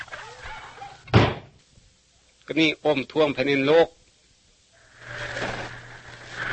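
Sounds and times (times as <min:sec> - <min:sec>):
heavy door slamming shut: 0:01.1 - 0:01.5
speech: 0:02.5 - 0:04.0.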